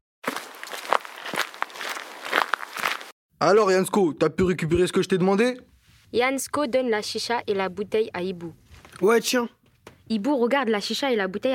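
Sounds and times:
footsteps of a person walking from a bus stop: 0:00.2 - 0:03.2
steady wash of noise: 0:02.3 - 0:11.5
speech: 0:03.4 - 0:11.5.

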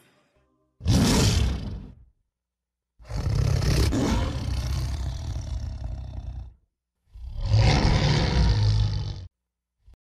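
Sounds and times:
powerful lion roaring: 0:00.8 - 0:02.0, 0:03.0 - 0:09.3.

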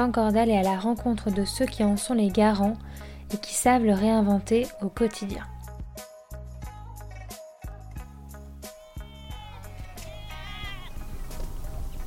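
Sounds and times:
speech: 0:00.0 - 0:05.6
sheep used for eco-grazing bleating: 0:08.7 - 0:11.2
steady farmyard background: 0:09.5 - 0:12.0.

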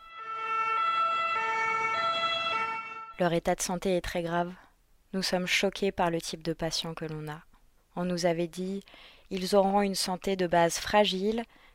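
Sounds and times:
ambulance siren of SAMU trucks: 0:00.0 - 0:03.2
speech: 0:03.2 - 0:11.6.

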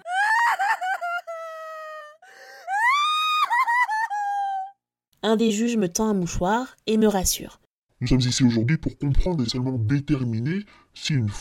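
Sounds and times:
child sobbing and wailing in distress: 0:00.0 - 0:04.8
speech: 0:05.2 - 0:11.3.

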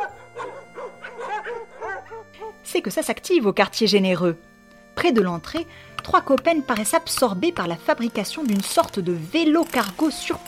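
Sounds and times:
several dogs barking and yelping excitedly: 0:00.0 - 0:02.6
speech: 0:02.7 - 0:10.4.

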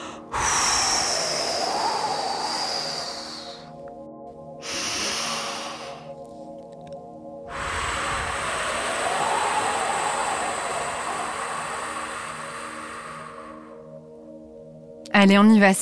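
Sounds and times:
deep breath in: 0:00.0 - 0:03.8, 0:04.6 - 0:06.2, 0:07.5 - 0:14.1
air blown out as long as possible: 0:00.0 - 0:03.9, 0:04.6 - 0:06.2, 0:07.5 - 0:14.0
speech: 0:15.2 - 0:15.7.

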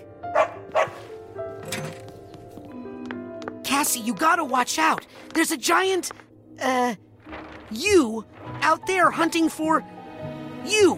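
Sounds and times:
dog barking: 0:00.3 - 0:01.1
speech: 0:03.8 - 0:07.0, 0:07.7 - 0:09.9, 0:10.6 - 0:10.9.

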